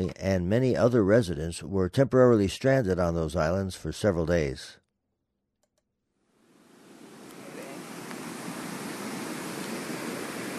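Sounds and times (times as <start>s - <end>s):
speech: 0.0s - 4.8s
flood-swollen river rushing after jumping its banks: 6.8s - 10.5s.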